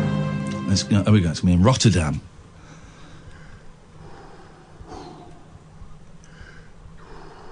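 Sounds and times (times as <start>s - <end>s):
speech: 0.7s - 2.3s
heavy breathing at the start of a song: 2.5s - 7.5s.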